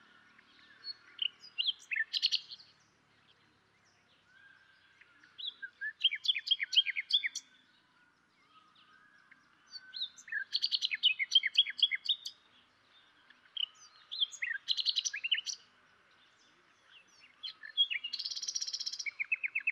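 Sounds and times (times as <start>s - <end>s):
Luscinia megarhynchos common nightingale song with rapid varied notes and chattering trills: 0.0s - 19.7s.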